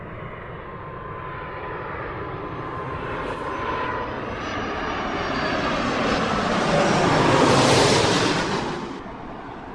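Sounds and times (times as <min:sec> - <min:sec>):
large cargo jet airliner landing: 0:00.0 - 0:09.7.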